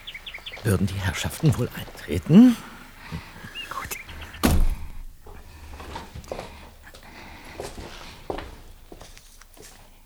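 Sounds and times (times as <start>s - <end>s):
speech: 0.6s - 3.3s
heavy front door thunking open: 4.4s - 5.1s.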